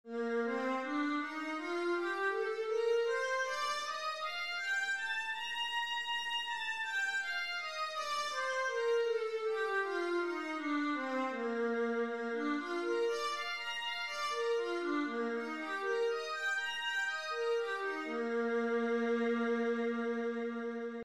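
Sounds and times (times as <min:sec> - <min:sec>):
viola playing B flat major scales: 0:00.1 - 0:21.0.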